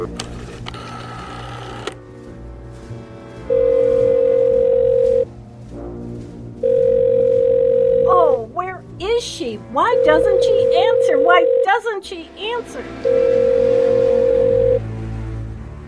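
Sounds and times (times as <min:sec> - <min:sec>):
telephone line tone buzzes while calling operator: 0:00.7 - 0:02.0, 0:03.5 - 0:05.3, 0:06.6 - 0:08.4, 0:09.8 - 0:11.8, 0:13.0 - 0:14.8
telephone line noise: 0:03.5 - 0:05.3, 0:06.6 - 0:08.4, 0:09.8 - 0:11.8, 0:13.0 - 0:14.8
speech: 0:09.7 - 0:13.5.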